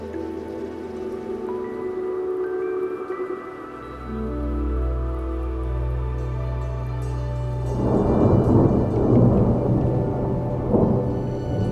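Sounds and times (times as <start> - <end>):
steady downpour of rain pattering: 0.0 - 11.6
low rolling thunder rumbling during a rainstorm: 4.2 - 11.6.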